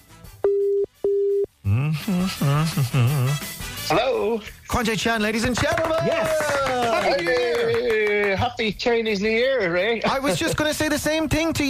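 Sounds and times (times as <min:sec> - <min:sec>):
WhatsApp call ringing tone beeps: 0:00.4 - 0:01.5
speech: 0:01.9 - 0:11.6.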